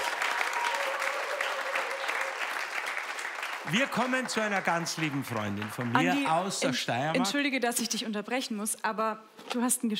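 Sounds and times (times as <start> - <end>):
audience applause: 0.0 - 7.1
speech: 3.6 - 9.9.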